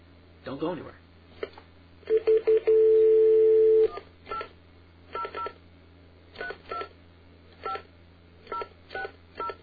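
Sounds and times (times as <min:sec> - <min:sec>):
speech: 0:00.4 - 0:01.1
long steady phone line tone: 0:02.1 - 0:04.0.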